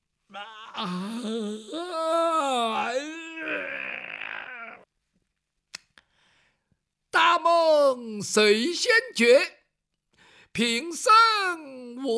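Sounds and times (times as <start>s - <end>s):
speech: 0.3s - 2.1s, 8.2s - 9.6s, 10.6s - 12.1s
man's voice imitating a yawn and stretch: 0.3s - 4.9s.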